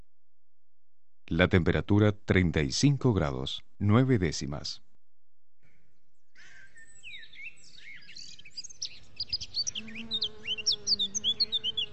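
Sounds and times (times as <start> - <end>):
speech: 1.3 - 4.8
birds chirping and tweeting: 5.6 - 11.9
bees buzzing: 8.8 - 11.9.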